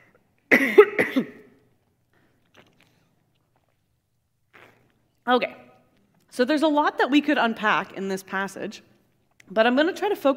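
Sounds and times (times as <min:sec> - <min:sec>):
speech: 0:00.5 - 0:00.9, 0:05.3 - 0:05.6, 0:06.4 - 0:08.9, 0:09.5 - 0:10.3
throat-clearing cough from a tickle in the throat: 0:00.5 - 0:01.6.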